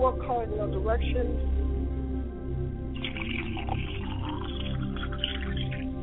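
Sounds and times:
speech: 0:00.0 - 0:01.8
libation liquid poured onto the ground: 0:03.0 - 0:05.9.

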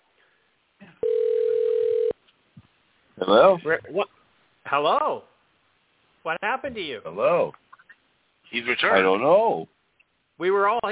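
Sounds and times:
phone line ringback tone of an outgoing call: 0:01.0 - 0:02.2
speech: 0:03.2 - 0:05.3, 0:06.2 - 0:07.6, 0:08.5 - 0:09.7, 0:10.4 - 0:10.8.

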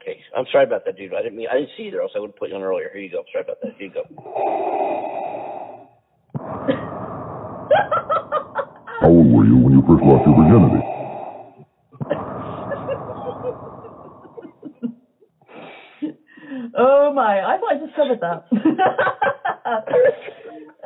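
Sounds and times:
speech: 0:00.4 - 0:04.8, 0:09.0 - 0:10.9, 0:17.2 - 0:20.4
person laughing: 0:09.0 - 0:11.0
voice imitating heavy breath through a mask: 0:09.0 - 0:11.5.

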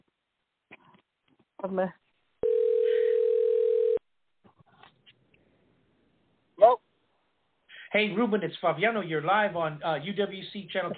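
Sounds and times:
speech: 0:01.6 - 0:02.0, 0:08.0 - 0:10.9
telephone call ringing out: 0:02.4 - 0:04.0.

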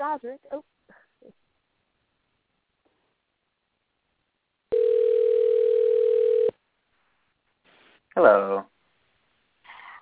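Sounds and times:
speech: 0:00.1 - 0:01.4, 0:08.2 - 0:08.7
ringback tone from an outgoing phone call: 0:04.7 - 0:06.6.

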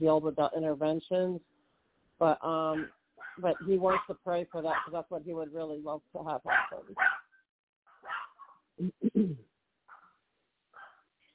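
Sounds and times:
speech: 0:00.0 - 0:01.6, 0:02.2 - 0:07.2, 0:08.8 - 0:09.5
dog barking: 0:02.8 - 0:04.1, 0:04.7 - 0:05.0, 0:06.5 - 0:07.3, 0:08.0 - 0:08.6, 0:10.8 - 0:11.0.

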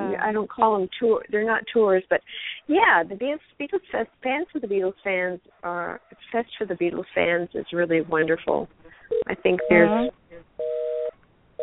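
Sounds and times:
speech: 0:00.2 - 0:10.5
telephone busy signal: 0:09.1 - 0:11.6.

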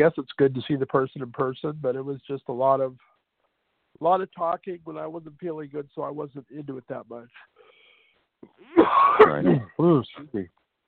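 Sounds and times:
speech: 0:00.0 - 0:03.1, 0:04.0 - 0:07.6, 0:08.4 - 0:10.6
person clearing throat against the microphone: 0:08.4 - 0:09.8
person coughing into the microphone: 0:08.6 - 0:09.8.

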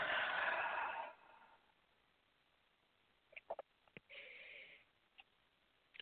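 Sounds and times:
slow soft breathing during a guided prayer exercise: 0:00.0 - 0:01.8, 0:04.1 - 0:04.9.

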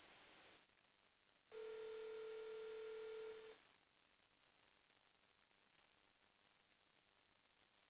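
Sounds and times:
telephone ringback tone over a phone line: 0:01.5 - 0:03.5
phone line hiss: 0:01.5 - 0:03.6.

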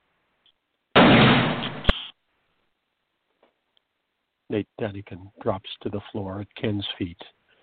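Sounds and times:
gunshot fired indoors with roomy decay: 0:01.0 - 0:02.1
sharp click: 0:01.6 - 0:02.2
speech: 0:04.5 - 0:07.4.

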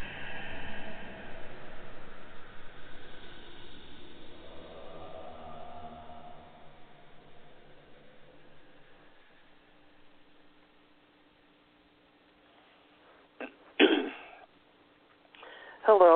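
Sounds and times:
faint hum and hiss: 0:00.0 - 0:16.1
throat clearing from a tickle in the throat: 0:13.4 - 0:14.5.

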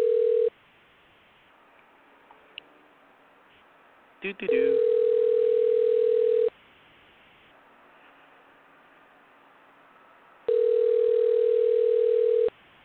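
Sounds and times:
ringback tones over a phone line: 0:00.0 - 0:00.5, 0:04.5 - 0:06.5, 0:10.5 - 0:12.5
speech: 0:04.2 - 0:05.0.

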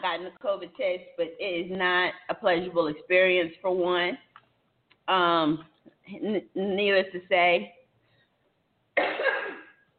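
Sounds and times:
speech: 0:00.0 - 0:04.3, 0:05.1 - 0:07.8
loud cough: 0:09.0 - 0:09.9.

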